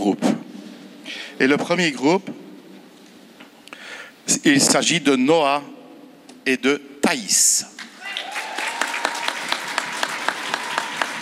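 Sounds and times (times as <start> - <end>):
speech: 0.0 - 0.3, 1.1 - 2.4, 4.3 - 5.8, 6.4 - 7.8
crowd applauding at a challenge event: 8.0 - 11.2.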